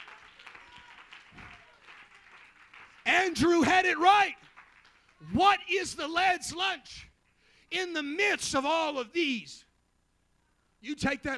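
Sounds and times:
audience clapping during a church sermon: 0.0 - 5.3
speech: 3.1 - 4.4, 5.2 - 7.1, 7.7 - 9.7, 10.8 - 11.3.

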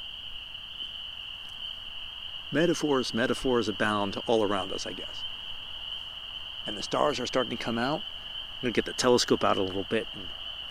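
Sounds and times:
American toad long steady high trill: 0.0 - 10.6
quiet outdoor background at nightfall: 0.0 - 10.6
speech: 2.5 - 5.4, 6.6 - 10.4.

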